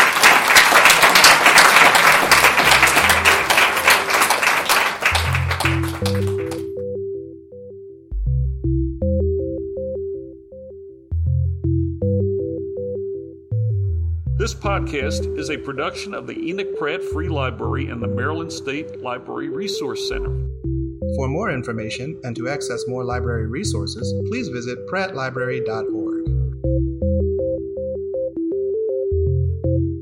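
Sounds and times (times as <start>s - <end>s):
audience applauding: 0.0s - 6.7s
gentle instrumental music: 2.2s - 30.0s
speech: 14.8s - 20.5s, 21.1s - 26.1s.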